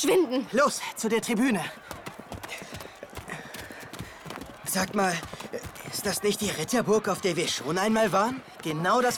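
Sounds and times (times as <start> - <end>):
speech: 0.0 - 2.6, 4.7 - 9.1
hooves of jousting knights' horses riding toward each other: 1.9 - 6.2.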